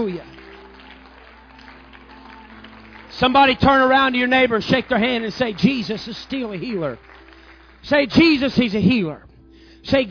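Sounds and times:
speech: 0.0s - 0.3s, 3.2s - 7.1s, 7.8s - 10.0s
roomful of people clapping in praise: 0.0s - 8.8s.

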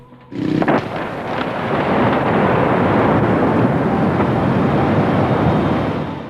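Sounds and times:
loud explosion rumbling: 0.3s - 6.2s.

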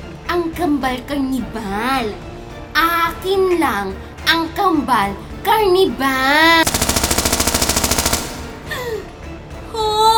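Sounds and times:
speech: 0.4s - 6.6s
machine-gun fire: 6.6s - 8.8s.

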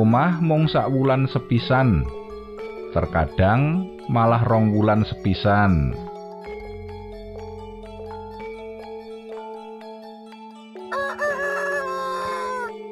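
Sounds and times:
speech: 0.0s - 2.2s, 2.9s - 6.0s
rooster crowing: 10.8s - 12.8s.

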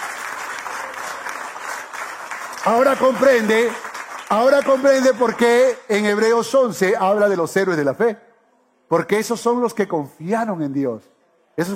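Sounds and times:
audience applauding: 0.0s - 5.8s
speech: 2.6s - 8.2s, 8.9s - 11.7s.

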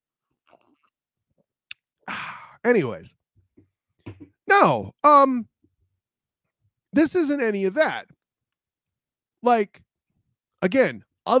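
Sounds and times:
person sipping a drink: 0.4s - 1.0s
speech: 2.6s - 3.2s, 4.5s - 5.5s, 6.9s - 8.2s, 9.4s - 9.8s, 10.6s - 11.3s.

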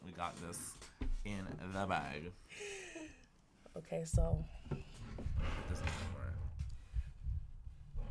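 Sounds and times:
speech: 0.2s - 2.9s, 3.7s - 6.2s
soft low thumps: 4.1s - 5.5s, 6.8s - 7.9s.

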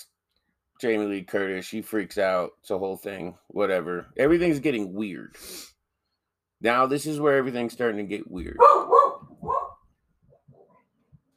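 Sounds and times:
speech: 0.8s - 5.7s, 6.6s - 8.9s
dogs barking: 8.6s - 9.8s.

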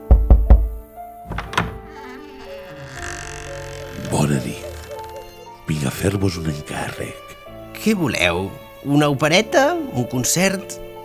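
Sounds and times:
knocking on a wooden door: 0.0s - 2.1s
speech: 4.1s - 4.7s, 5.8s - 10.9s.

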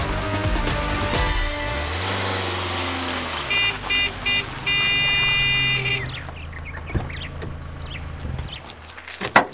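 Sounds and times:
low rumble of engine and road noise: 0.2s - 9.5s
car horn honking at a slow-driving car: 1.6s - 8.6s.

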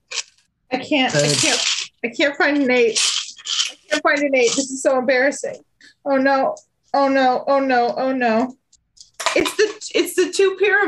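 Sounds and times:
speech: 0.8s - 8.6s, 9.3s - 10.8s
dice rattling in a dice cup: 2.9s - 4.8s.

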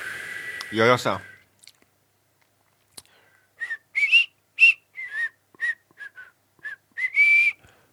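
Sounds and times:
person whistling through their teeth: 0.0s - 1.4s, 3.6s - 7.7s
speech: 0.7s - 1.3s.

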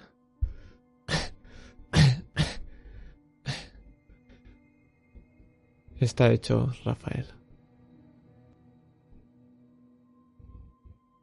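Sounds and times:
faint breathing of a child: 0.0s - 1.9s, 2.6s - 5.6s
child coughing: 1.1s - 2.6s
speech: 6.0s - 7.4s.

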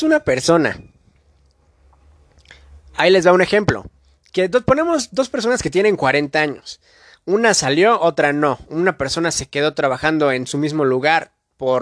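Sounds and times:
speech: 0.0s - 0.9s, 3.0s - 11.8s
sip of water with wet mouth sounds: 1.9s - 2.8s.

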